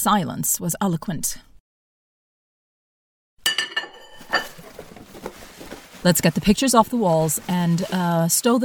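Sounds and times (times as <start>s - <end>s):
speech: 0.0s - 1.5s, 6.0s - 8.6s
dishes clinking while being packed up: 3.5s - 4.8s
crockery rattling and shuffling while being packed: 3.5s - 8.1s.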